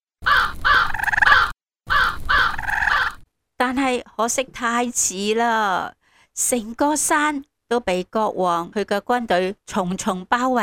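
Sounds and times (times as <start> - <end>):
crow cawing harshly in the mountains: 0.2 - 3.2
speech: 3.6 - 10.6.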